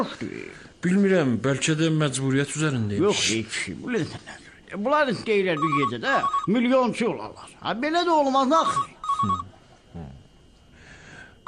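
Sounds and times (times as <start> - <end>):
speech: 0.0 - 10.1
electronic telephone ringing: 5.5 - 6.8, 8.4 - 9.6
breathy voice sound: 9.2 - 11.4.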